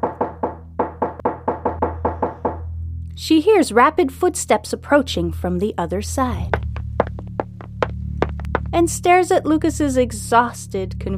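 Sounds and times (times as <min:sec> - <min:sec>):
rapid urgent knocking on a house door: 0:00.0 - 0:02.6, 0:06.6 - 0:08.7
speech: 0:03.2 - 0:06.6, 0:08.8 - 0:11.1.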